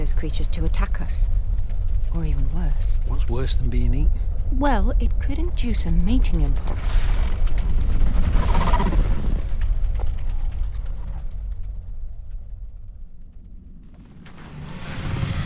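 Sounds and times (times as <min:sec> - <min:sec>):
speech: 0:00.0 - 0:01.4, 0:02.1 - 0:07.3
drone mechanical rumble and hum: 0:00.0 - 0:15.4
rattling clicks of a drone: 0:05.5 - 0:11.8.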